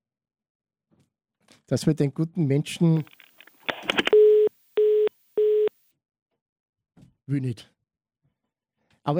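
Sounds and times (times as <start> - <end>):
speech: 1.7 - 3.2, 7.3 - 7.7
telephone dialing clicks: 3.0 - 5.8
telephone call tone beeps, line not connecting: 4.0 - 5.8.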